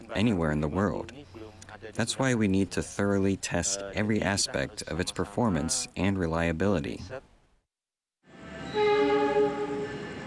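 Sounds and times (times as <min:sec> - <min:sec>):
speech: 0:00.1 - 0:07.3
train horn multi-tone blast: 0:08.5 - 0:10.2.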